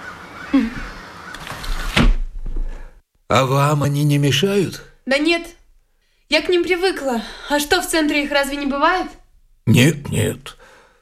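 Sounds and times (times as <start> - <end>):
crows cawing outside an open window: 0.0 - 1.9
speech: 0.5 - 0.9, 3.3 - 5.6, 6.3 - 10.6.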